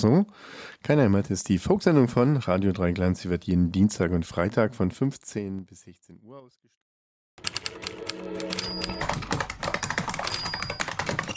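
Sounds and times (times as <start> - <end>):
speech: 0.0 - 6.8, 7.4 - 9.8
rapid typing on keyboard keys: 7.4 - 11.3.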